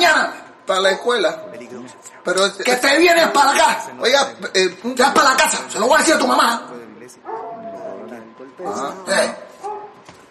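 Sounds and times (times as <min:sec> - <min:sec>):
speech: 0:00.7 - 0:07.3, 0:08.6 - 0:09.4
dog barking and howling: 0:00.8 - 0:02.3, 0:07.2 - 0:10.0.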